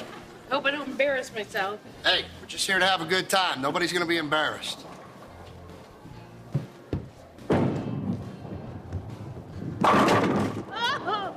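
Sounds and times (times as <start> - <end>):
speech: 0.5 - 4.9
bowling ball thudding and rumbling along the lane: 6.5 - 10.8
bowling pins crashing: 7.4 - 10.8.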